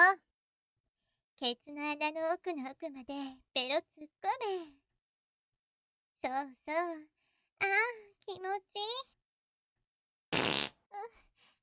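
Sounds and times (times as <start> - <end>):
speech: 1.4 - 4.8, 6.2 - 9.1
fart: 10.3 - 10.9.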